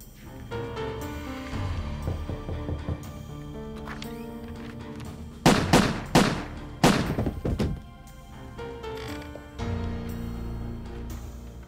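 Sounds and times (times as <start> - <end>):
music: 0.0 - 11.6
knock at a door: 2.0 - 3.2
gunshots during a shooting at a couple's home: 5.4 - 7.6.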